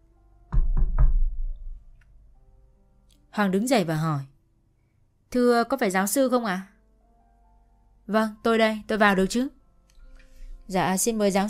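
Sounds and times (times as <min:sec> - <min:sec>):
sharp knocks on an open door: 0:00.5 - 0:01.6
speech: 0:03.4 - 0:04.3, 0:05.3 - 0:06.7, 0:08.1 - 0:09.6, 0:10.7 - 0:11.4.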